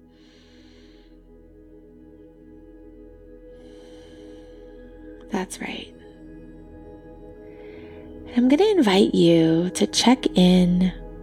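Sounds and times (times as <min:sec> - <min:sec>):
deep breath during a guided meditation: 0:00.0 - 0:01.3, 0:03.5 - 0:05.2, 0:07.4 - 0:08.3
speech: 0:05.4 - 0:06.0, 0:08.4 - 0:11.0.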